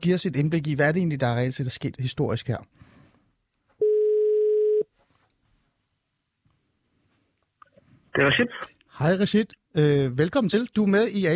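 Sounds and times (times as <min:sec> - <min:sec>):
speech: 0:00.0 - 0:02.9, 0:08.2 - 0:11.3
telephone ringback tone while calling: 0:03.8 - 0:04.8
quiet rustling: 0:04.9 - 0:08.1.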